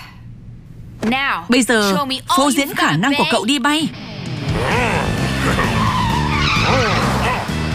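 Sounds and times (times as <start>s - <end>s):
speech: 1.1s - 4.1s
car tires skidding through a sharp steering turn: 5.0s - 7.6s.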